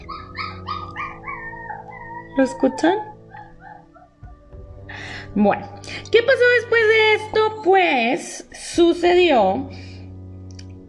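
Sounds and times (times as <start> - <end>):
puppies howling and yipping: 0.0 - 4.4
speech: 2.4 - 3.1, 5.4 - 9.8.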